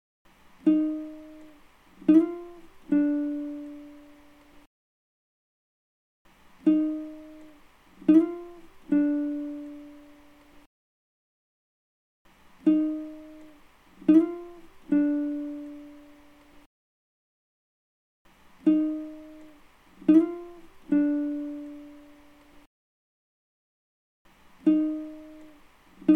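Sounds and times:
guitar loop in G minor: 0.6s - 4.6s, 6.6s - 10.6s, 12.6s - 16.6s, 18.6s - 22.6s, 24.6s - 26.1s.

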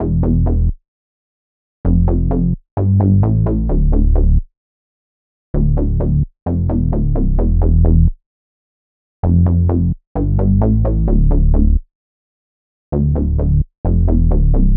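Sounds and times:
OB-6 bass melody loop in A minor: 0.0s - 0.8s, 1.9s - 4.4s, 5.6s - 8.2s, 9.2s - 11.8s, 13.0s - 14.7s.

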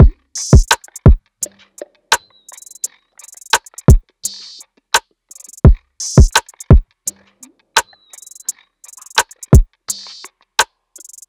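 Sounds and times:
drum loop: 0.0s - 1.2s, 2.5s - 4.6s, 5.3s - 6.8s, 8.2s - 10.3s.

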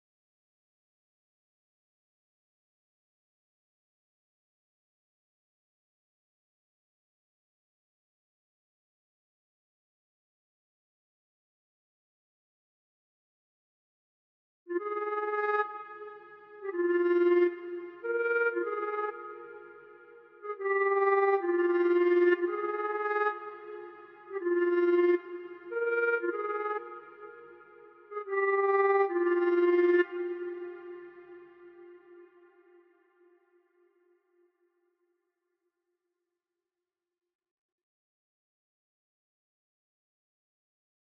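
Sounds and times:
oboe melody loop at 125 BPM in F minor: 14.7s - 33.0s.

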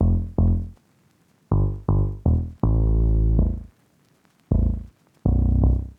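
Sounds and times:
160 BPM A minor bass melody loop: 0.0s - 0.8s, 1.5s - 3.7s, 4.5s - 5.9s.

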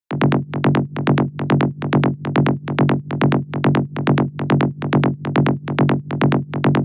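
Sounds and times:
bass loop in E: 0.1s - 6.8s.

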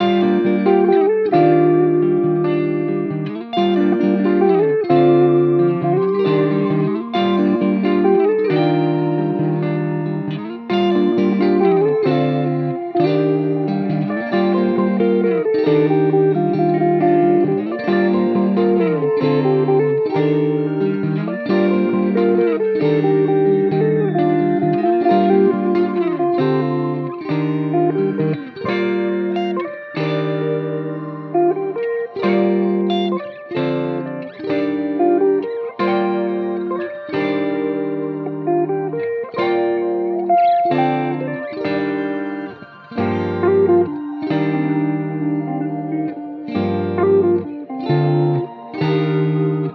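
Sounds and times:
guitar loop in G minor: 0.0s - 49.7s.

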